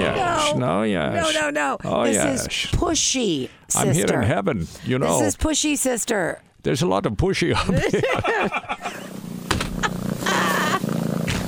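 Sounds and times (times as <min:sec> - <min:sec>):
speech: 0:00.5 - 0:08.9
laughter: 0:07.5 - 0:09.2, 0:09.8 - 0:10.8
cat purring while being petted: 0:08.9 - 0:11.4
breathy bursts and rustles: 0:09.0 - 0:11.4.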